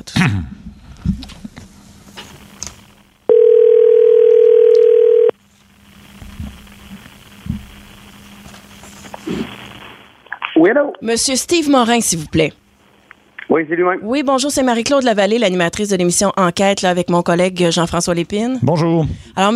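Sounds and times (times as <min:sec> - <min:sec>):
speech: 0:00.1 - 0:00.6, 0:10.6 - 0:12.6, 0:13.5 - 0:19.5
telephone dial tone while a call is being placed: 0:03.3 - 0:05.3.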